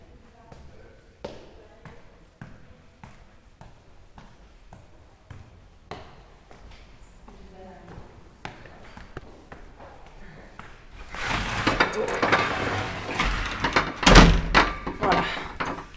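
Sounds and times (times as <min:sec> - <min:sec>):
bumps and scraping of the door latch: 0:10.9 - 0:15.9
door clicks and rattles: 0:10.9 - 0:15.9.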